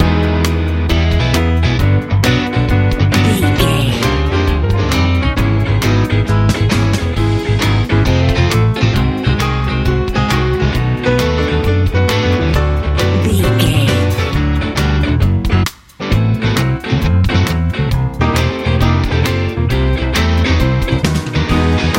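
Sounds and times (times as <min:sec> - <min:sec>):
happy warm Texas blues music: 0:00.0 - 0:21.9.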